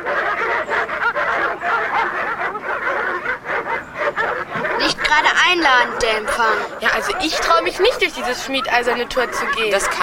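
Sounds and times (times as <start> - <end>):
pack of dogs barking wildly: 0.0 - 10.0
laughter: 4.0 - 10.0
speech: 5.2 - 10.0.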